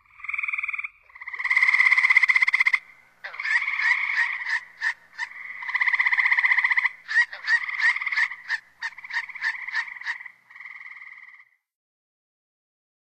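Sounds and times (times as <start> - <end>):
gray treefrog giving pulsed musical trills: 0.0 - 11.6.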